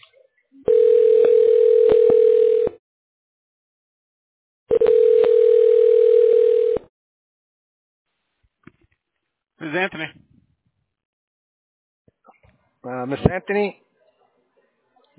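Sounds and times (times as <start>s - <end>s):
telephone line electronic ringback tone: 0.7s - 2.8s, 4.7s - 6.9s
speech: 13.2s - 13.8s.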